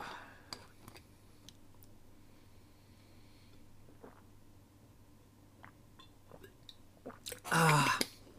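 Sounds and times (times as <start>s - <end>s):
low steady hum: 0.0s - 8.3s
soft sips and swallows of drinking water: 3.9s - 4.3s, 5.6s - 8.3s.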